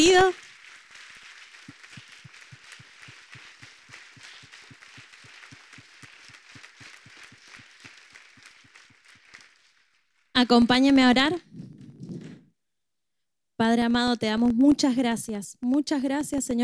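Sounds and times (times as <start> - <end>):
speech: 0.0 - 0.5, 10.4 - 11.6, 13.6 - 16.6
audience applauding: 0.0 - 10.2.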